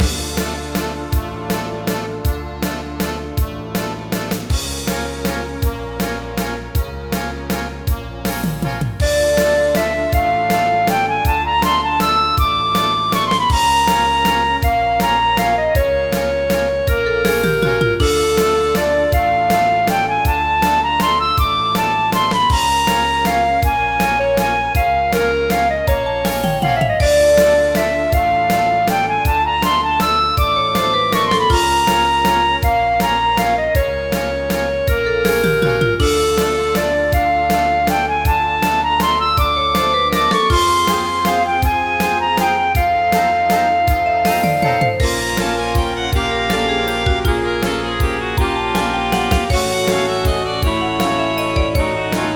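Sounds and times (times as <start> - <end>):
waltz music: 0.0 - 52.3.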